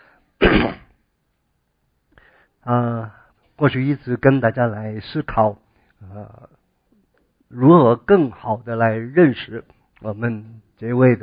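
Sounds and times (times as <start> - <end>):
preacher coughing sharply before a sermon: 0.4 - 0.9
preacher's voiced rasping throat clearing: 0.4 - 0.9
speech: 2.6 - 6.6, 7.5 - 11.2.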